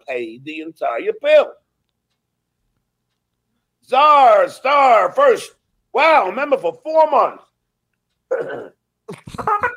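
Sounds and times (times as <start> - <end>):
speech: 0.1 - 1.6, 3.9 - 7.5, 8.3 - 9.7
burp into a hand: 8.3 - 9.4.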